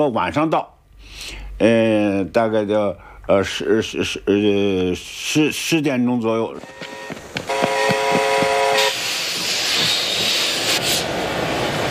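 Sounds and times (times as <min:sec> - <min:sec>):
speech: 0:00.0 - 0:07.6
train from the Soviet Union rolling wheels and engine roar at Manzhouli station: 0:06.5 - 0:11.8
train horn blaring at a station at night: 0:06.6 - 0:09.1.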